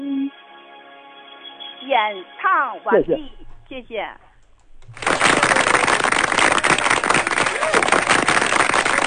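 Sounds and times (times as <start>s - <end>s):
speech: 1.9s - 4.2s
audience applause after a song: 4.8s - 9.0s.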